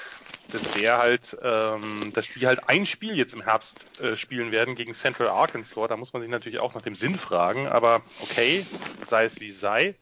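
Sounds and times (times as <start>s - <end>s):
heavy breathing into a microphone: 0.0s - 0.4s, 8.0s - 9.0s
speech: 0.5s - 9.9s.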